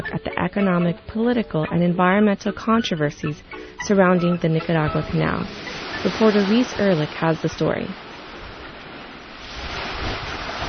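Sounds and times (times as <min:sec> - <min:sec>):
speech: 0:00.0 - 0:08.0
lake waves lapping against the shore of an island: 0:03.5 - 0:10.6
wind noise: 0:05.0 - 0:10.6.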